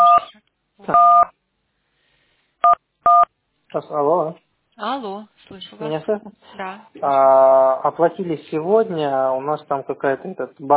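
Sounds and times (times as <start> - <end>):
telephone keypad tones from buttons pressed on a phone: 0.0 - 0.3, 1.0 - 1.3, 2.6 - 3.3
speech: 3.7 - 10.7.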